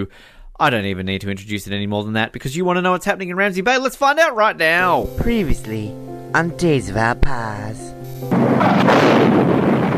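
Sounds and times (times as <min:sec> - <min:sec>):
speech: 0:00.0 - 0:09.5
loud explosion sound effect: 0:08.3 - 0:09.9.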